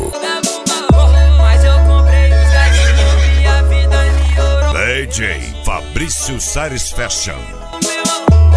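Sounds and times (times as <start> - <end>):
thumping music track with heavy bass: 0.0 - 2.6, 4.6 - 8.4
horse whinnying loudly: 2.4 - 3.6
speech: 5.1 - 7.8.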